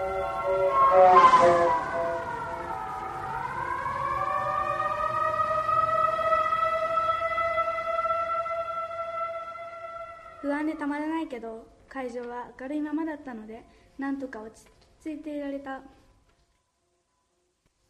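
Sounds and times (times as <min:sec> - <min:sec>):
distant ambulance siren wailing: 0:00.0 - 0:11.1
speech: 0:10.8 - 0:16.0.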